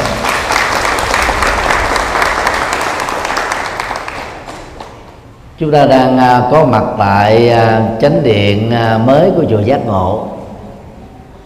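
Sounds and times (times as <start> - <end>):
sizable audience applauding in a Buddhist temple main hall: 0.0 - 5.2
speech: 5.6 - 10.3.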